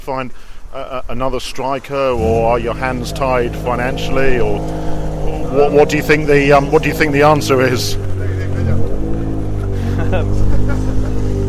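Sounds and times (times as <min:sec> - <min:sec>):
speech: 0:00.0 - 0:08.8, 0:10.1 - 0:10.5
indistinct vocal sounds: 0:02.1 - 0:08.0
car engine revving: 0:02.1 - 0:11.4
laughter: 0:07.4 - 0:11.4.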